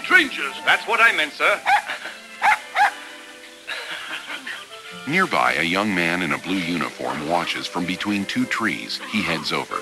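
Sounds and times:
speech: 0.2s - 2.0s, 5.0s - 9.8s
young collie puppy yipping: 1.6s - 3.0s
laughter: 1.7s - 2.3s, 3.7s - 4.9s.

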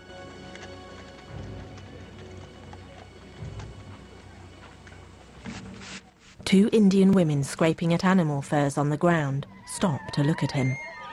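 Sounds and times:
horse hooves clip-clopping on a dusty trail: 0.0s - 6.2s
speech: 6.5s - 10.9s.

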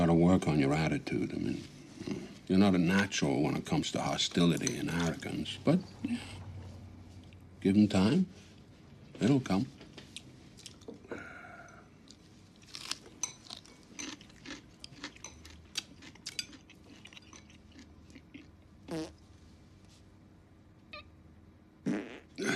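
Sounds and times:
speech: 0.1s - 6.4s, 7.6s - 8.4s, 9.2s - 9.8s
fart with wet sputtering pops: 18.9s - 19.2s, 21.8s - 22.5s.

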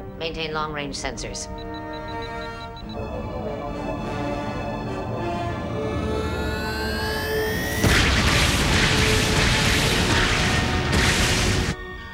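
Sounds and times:
speech: 0.2s - 3.3s
rising electronic whine: 2.8s - 11.8s
antimatter explosions roaring: 4.9s - 11.8s.

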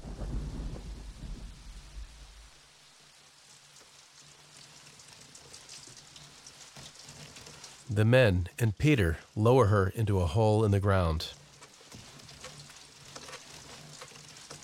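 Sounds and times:
low thunder rumble: 0.0s - 2.6s
rain falling on a stained-glass casket: 0.0s - 8.5s, 10.4s - 14.6s
speech: 8.0s - 11.4s.

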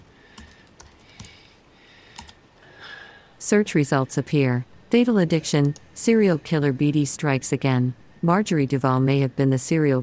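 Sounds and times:
computer keyboard keys clacking as a search is typed: 0.0s - 2.4s
low steady hiss: 0.0s - 10.0s
speech: 3.5s - 10.0s.

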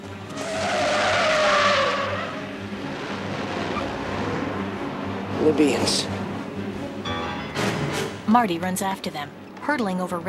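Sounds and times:
Volkswagen car engine roaring: 0.0s - 7.1s
Volkswagen car tires squealing while skidding around a corner: 0.0s - 7.1s
speech: 5.4s - 6.2s, 8.3s - 10.2s.

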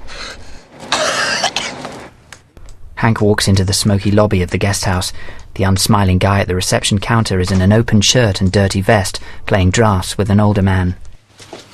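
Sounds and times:
wounded man coughing: 0.9s - 1.8s
speech: 3.0s - 11.0s.

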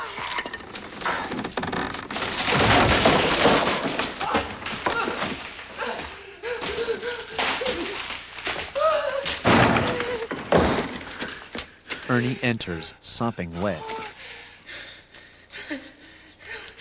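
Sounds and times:
cupboard wood cracking and splintering: 0.2s - 5.8s, 6.6s - 11.2s
cupboard falling over with a crash: 0.7s - 5.8s, 9.2s - 11.3s
speech: 12.2s - 14.0s.

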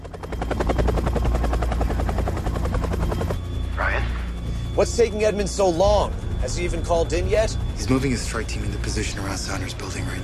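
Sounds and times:
helicopter heavy low engine drone: 0.0s - 10.2s
helicopter rotor blades chopping: 0.0s - 10.2s
speech: 4.8s - 10.2s.

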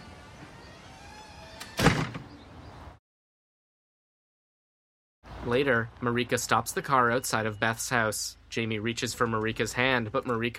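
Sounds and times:
door opening after an intercom buzzer: 0.0s - 2.5s
speech: 5.4s - 10.5s.

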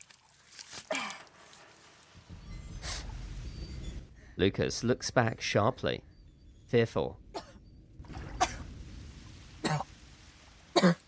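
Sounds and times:
low steady rumble: 2.1s - 11.0s
speech: 4.4s - 6.1s, 6.7s - 7.2s
woman coughing up blood: 10.8s - 11.0s.

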